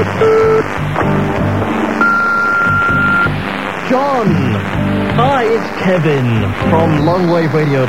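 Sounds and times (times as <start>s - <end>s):
rhythmic music: 0.0s - 7.8s
short electronic tone of a telephone number being dialed: 2.0s - 3.3s
long steady telephone beep: 2.0s - 3.4s
speech: 3.9s - 7.8s.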